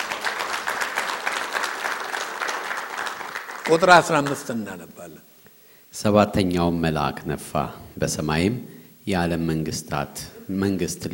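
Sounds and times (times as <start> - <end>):
audience applause at a sermon: 0.0 - 4.8
speech: 3.7 - 5.3, 5.9 - 11.1.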